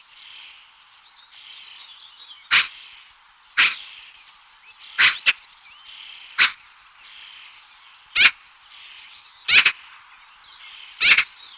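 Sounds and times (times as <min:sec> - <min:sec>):
small birds twittering: 0:00.0 - 0:11.5
Eurasian magpie uttering rasping chack calls: 0:02.5 - 0:02.8, 0:03.6 - 0:03.9, 0:05.0 - 0:05.4, 0:06.4 - 0:06.6, 0:08.2 - 0:08.4, 0:09.5 - 0:09.8, 0:11.0 - 0:11.3.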